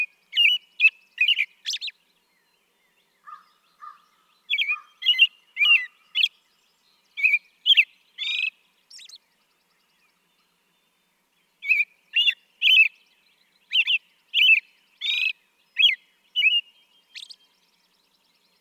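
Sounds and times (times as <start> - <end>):
American robin whistled song: 0.0 - 10.5, 11.6 - 18.5.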